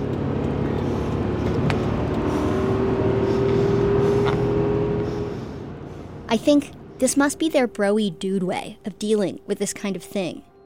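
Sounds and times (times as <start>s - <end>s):
car engine accelerating passing another car: 0.0s - 7.4s
road noise: 0.0s - 10.4s
speech: 6.3s - 10.5s.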